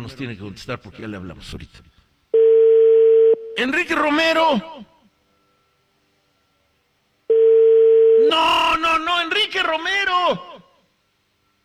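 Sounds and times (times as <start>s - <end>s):
speech: 0.1s - 2.0s, 3.6s - 4.9s, 8.3s - 10.6s
telephone line tone while placing a call: 2.3s - 3.6s, 7.3s - 8.5s.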